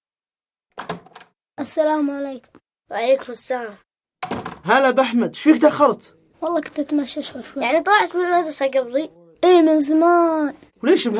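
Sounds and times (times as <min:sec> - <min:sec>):
door rattle as a door is opened: 0:00.7 - 0:01.4, 0:04.2 - 0:04.7
speech: 0:01.6 - 0:03.9, 0:04.6 - 0:11.1
door knocks: 0:04.2 - 0:04.7.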